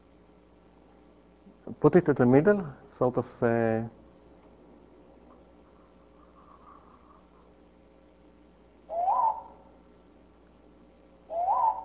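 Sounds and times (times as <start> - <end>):
quiet hiss: 0.0 - 11.8
speech: 1.7 - 4.0
tonal natural bird chirps: 8.9 - 9.7, 11.3 - 11.8.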